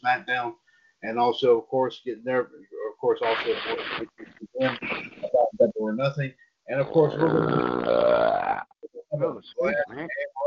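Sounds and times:
speech: 0.0s - 10.4s
loud deep resonant belch: 6.8s - 8.7s.

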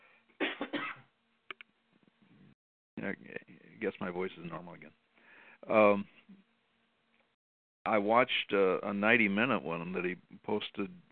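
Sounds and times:
harsh coughing: 0.4s - 1.1s
speech: 3.0s - 5.0s, 5.6s - 6.4s, 7.9s - 11.0s.

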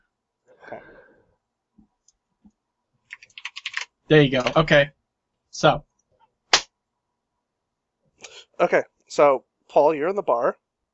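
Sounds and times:
speech: 0.7s - 1.0s, 4.1s - 5.0s, 5.6s - 5.9s, 8.6s - 10.6s
typing on a keyboard: 3.1s - 4.6s.

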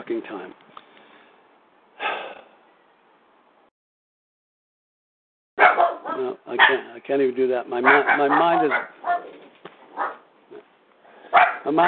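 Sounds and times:
speech: 0.0s - 0.6s, 6.3s - 9.4s, 11.7s - 11.8s
dog barking: 5.6s - 6.8s, 7.8s - 10.3s, 11.3s - 11.7s.

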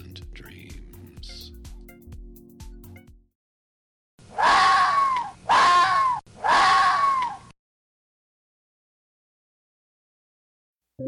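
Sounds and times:
fox screaming: 4.3s - 7.5s.

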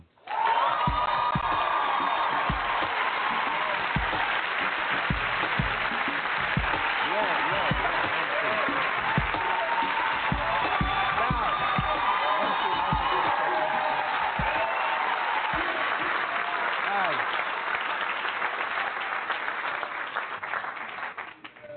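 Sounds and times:
scattered whoops and shouts from audience: 0.2s - 4.4s, 7.1s - 17.2s
large audience applauding: 0.2s - 21.7s.

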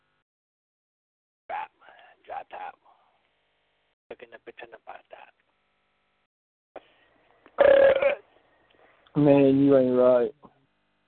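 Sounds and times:
speech: 4.2s - 5.4s, 9.2s - 10.4s
loud raspy burp: 7.6s - 8.2s.

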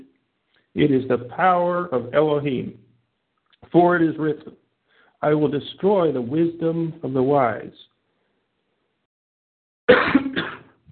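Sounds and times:
speech: 0.7s - 2.8s, 3.7s - 4.6s, 5.2s - 7.9s
person coughing: 9.9s - 10.8s.

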